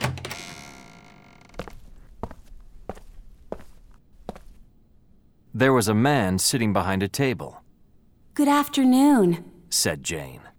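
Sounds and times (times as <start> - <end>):
door clicking and opening with a creak: 0.0 - 1.8
footsteps on a hard floor: 1.6 - 4.6
speech: 5.6 - 7.6, 8.4 - 10.5.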